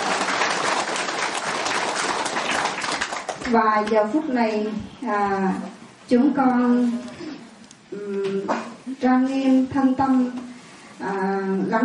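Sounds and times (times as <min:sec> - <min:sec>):
audience applause welcoming a Buddhist monk lecturer: 0:00.0 - 0:03.5
speech: 0:03.5 - 0:07.1, 0:09.0 - 0:10.4, 0:11.0 - 0:11.8.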